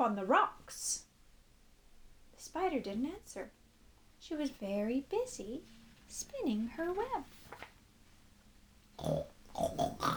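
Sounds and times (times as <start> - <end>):
speech: 0.0 - 1.0, 2.4 - 3.6, 4.2 - 7.7, 9.0 - 10.1
pig grunting and oinking: 9.0 - 10.1.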